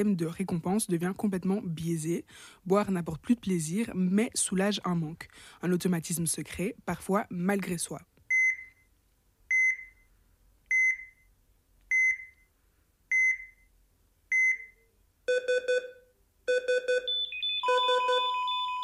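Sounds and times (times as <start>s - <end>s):
speech: 0.0s - 8.1s
short electronic beeps: 10.7s - 11.3s, 13.1s - 13.7s, 14.3s - 18.8s
continuous layered electronic tone: 14.4s - 18.8s
pulsing electronic beeping in a lower tone: 16.9s - 18.8s.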